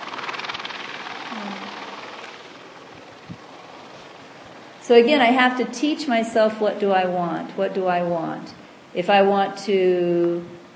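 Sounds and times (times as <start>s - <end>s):
low-flying emergency helicopter blades chopping: 0.0s - 4.7s
speech: 4.9s - 10.6s.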